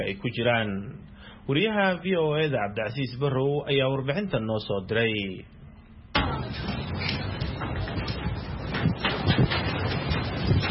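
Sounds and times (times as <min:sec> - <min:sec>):
speech: 0:00.0 - 0:05.6
strong wind blowing outside a bush house at a displaced people camp in Somalia: 0:06.6 - 0:10.6.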